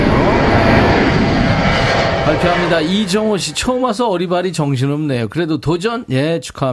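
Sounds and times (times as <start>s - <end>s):
airplane engine roaring while taking off: 0.0s - 5.2s
speech: 2.4s - 6.7s.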